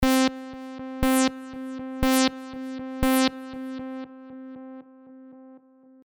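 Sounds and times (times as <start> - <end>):
delay feedback effect: 1.0 - 4.1.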